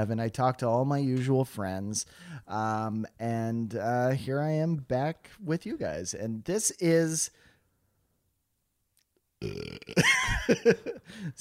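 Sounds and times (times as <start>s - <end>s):
speech: 0.0s - 7.5s, 9.4s - 11.3s
long human burp: 9.4s - 10.2s.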